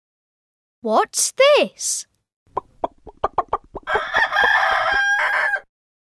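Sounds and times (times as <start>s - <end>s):
speech: 0.8s - 2.1s
chicken clucking: 2.5s - 5.6s
loud drawn-out rooster crow: 3.8s - 5.7s.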